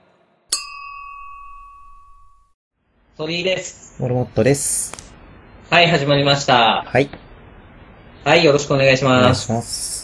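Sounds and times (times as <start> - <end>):
glasses clinking in a toast: 0.5 - 2.6
speech: 3.2 - 5.0, 5.7 - 7.2, 8.2 - 10.0.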